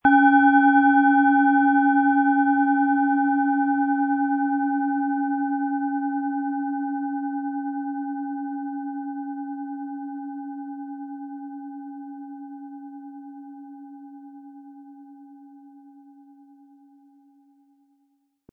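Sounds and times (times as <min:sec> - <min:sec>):
Mars planet singing bowl struck with a mallet: 0:00.0 - 0:10.6.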